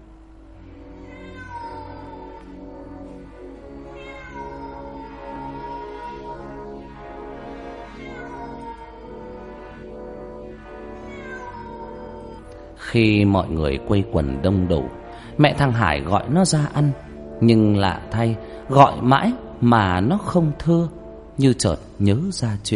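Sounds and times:
cat upstairs wailing in long drawn-out meows: 0.6 - 12.8
speech: 12.9 - 22.7.

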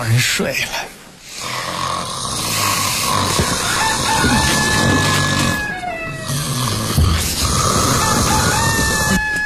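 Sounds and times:
speech: 0.0 - 1.0
snoring: 1.3 - 5.6, 6.2 - 9.0
rooster crowing: 3.4 - 6.7, 7.7 - 9.4.

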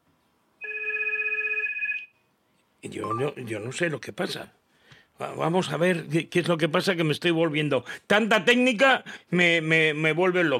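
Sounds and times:
telephone ringing: 0.6 - 2.2
speech: 2.8 - 4.6, 5.2 - 10.5.

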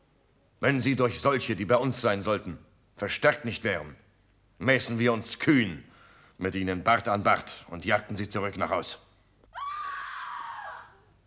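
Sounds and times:
speech: 0.6 - 4.0, 4.6 - 9.1
woman screaming: 9.5 - 11.1.

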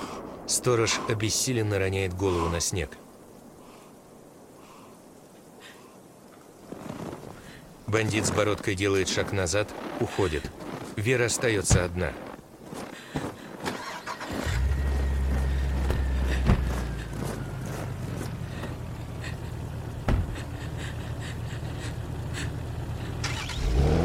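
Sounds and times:
speech: 0.5 - 3.1, 7.9 - 12.3
car engine rumbling on a snowy night: 13.8 - 24.0.

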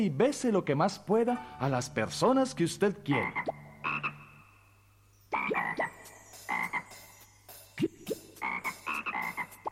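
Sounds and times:
speech: 0.0 - 3.6
toad croaking: 3.1 - 4.6, 5.3 - 7.1, 8.4 - 9.6.

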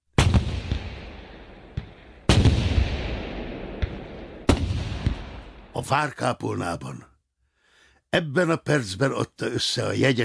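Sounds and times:
cannons firing from castle walls: 0.2 - 5.9
speech: 5.8 - 7.1, 8.1 - 10.2.

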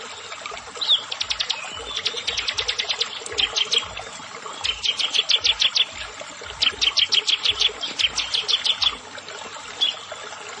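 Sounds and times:
prinia giving rapid series of high sharp chirps: 0.8 - 9.0.

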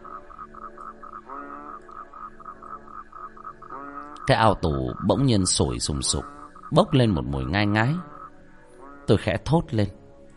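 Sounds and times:
frogs croaking in a stagnant pond in the morning: 0.0 - 10.3
speech: 4.3 - 8.1, 9.1 - 10.0.

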